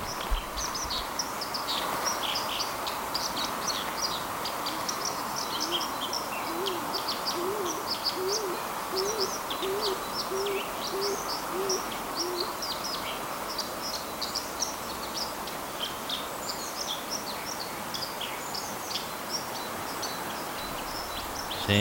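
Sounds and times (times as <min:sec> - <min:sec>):
small birds chirping: 0:00.0 - 0:21.8
dove in a tree cooing: 0:05.6 - 0:12.6.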